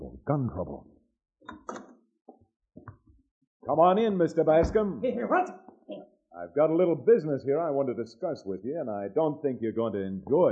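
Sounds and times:
speech: 0:00.3 - 0:01.7, 0:03.7 - 0:10.5
solid knocks on a wooden door: 0:04.6 - 0:05.0.

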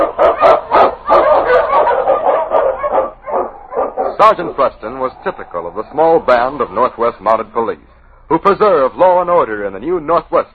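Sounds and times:
husky sled dog barking and yipping: 0:00.0 - 0:05.7
speech: 0:04.2 - 0:10.5.

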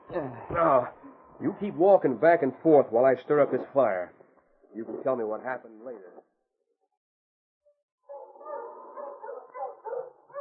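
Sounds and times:
speech: 0:00.1 - 0:06.1
pack of sled dogs yelping and barking: 0:08.1 - 0:10.3.

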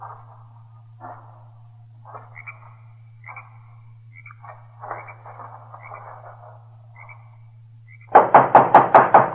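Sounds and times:
low hum: 0:00.0 - 0:09.1
knocks on a wooden hut door: 0:08.2 - 0:09.3.

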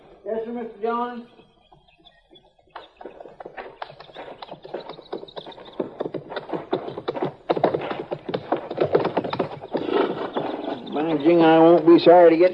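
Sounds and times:
horse hooves clip-clopping on a hard surface: 0:00.0 - 0:12.5
speech: 0:00.2 - 0:01.4, 0:11.1 - 0:12.5
horse snorting or whinnying: 0:03.0 - 0:11.7.

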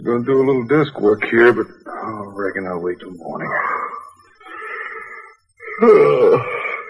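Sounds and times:
speech: 0:00.0 - 0:01.8, 0:02.4 - 0:03.8, 0:05.8 - 0:06.6
drawn-out groaning yawns: 0:03.4 - 0:06.8.

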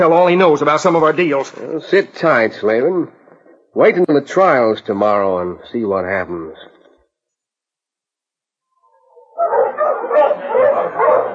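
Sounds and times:
speech: 0:00.0 - 0:06.7
sled dogs barking and yipping at a dog-pulling elimination contest: 0:09.0 - 0:11.3.

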